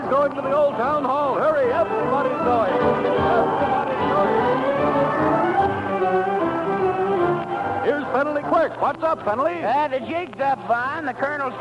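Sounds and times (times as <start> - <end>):
speech: 0.1 - 6.2, 8.1 - 11.5
crowd cheering at a parade: 1.6 - 8.9.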